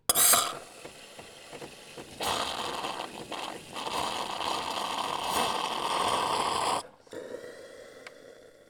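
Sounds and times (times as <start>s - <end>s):
coffee machine: 0.0s - 6.9s.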